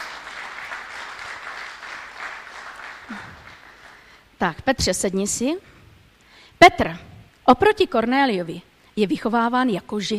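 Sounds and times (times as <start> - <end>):
audience applause welcoming a participant in a Bible story: 0.0 - 4.2
speech: 3.1 - 3.5, 4.4 - 5.8, 6.6 - 10.1.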